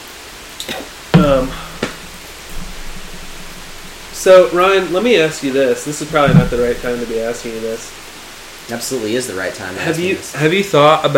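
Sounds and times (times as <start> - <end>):
heavy rain falling: 0.0 - 11.1
sharp taps: 0.6 - 8.7
speech: 4.2 - 8.0, 8.7 - 11.1.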